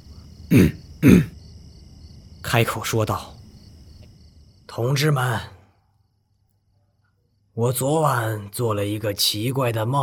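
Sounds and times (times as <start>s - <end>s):
person clearing throat: 0.5s - 1.4s
speech: 0.5s - 1.4s, 2.5s - 3.3s, 4.7s - 5.6s, 7.6s - 10.0s.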